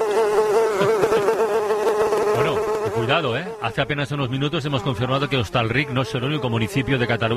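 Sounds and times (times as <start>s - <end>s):
flies buzzing during a fly plague in a village: 0.0s - 7.3s
laughter: 0.6s - 1.5s
speech: 3.1s - 7.3s.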